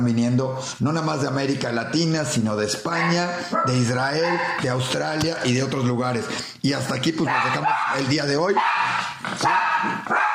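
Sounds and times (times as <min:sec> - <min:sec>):
speech: 0:00.0 - 0:10.3
dog giving short barks: 0:02.9 - 0:04.7, 0:07.2 - 0:10.3.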